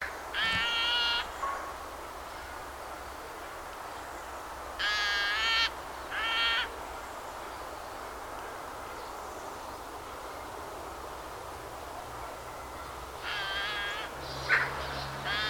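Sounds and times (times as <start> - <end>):
low background noise: 0.0 - 15.4
Eurasian magpie Pica pica uttering rasping nasal calls: 0.3 - 1.3, 4.8 - 6.7, 13.2 - 15.4.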